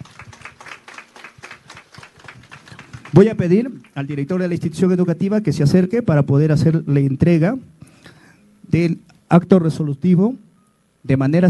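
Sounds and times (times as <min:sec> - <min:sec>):
audience applauding: 0:00.0 - 0:05.2
speech: 0:03.1 - 0:07.8, 0:08.7 - 0:11.4.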